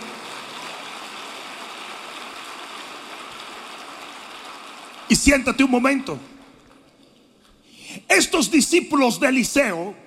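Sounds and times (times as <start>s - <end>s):
large crowd applauding: 0.0s - 6.8s
speech: 5.1s - 6.3s, 8.2s - 10.0s.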